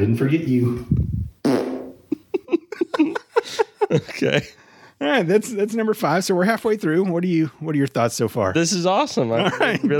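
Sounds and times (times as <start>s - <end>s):
speech: 0.0s - 1.1s, 3.9s - 9.9s
long loud fart with bathroom echo: 1.4s - 2.0s
laughter: 2.1s - 4.6s, 9.3s - 9.9s.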